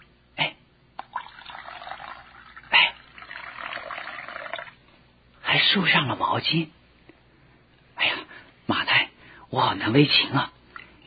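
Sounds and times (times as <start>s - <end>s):
water poured into a basin for washing feet: 1.0s - 4.8s
speech: 5.6s - 6.8s, 9.5s - 10.6s.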